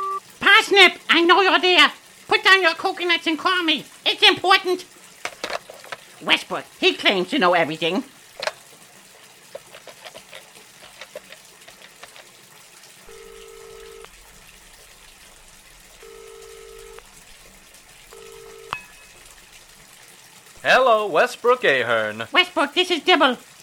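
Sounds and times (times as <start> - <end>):
two-tone electronic beep: 0.0 - 0.2
water running from a tap: 0.2 - 23.6
speech: 0.7 - 4.9, 6.2 - 8.2, 20.7 - 23.5.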